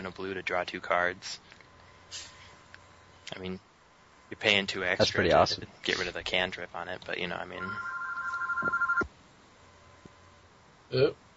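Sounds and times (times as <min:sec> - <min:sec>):
speech: 0:00.0 - 0:02.4, 0:03.3 - 0:03.7, 0:04.3 - 0:07.9, 0:08.6 - 0:08.9, 0:10.9 - 0:11.2
telephone ringing with trilling electronic burst: 0:07.6 - 0:09.1.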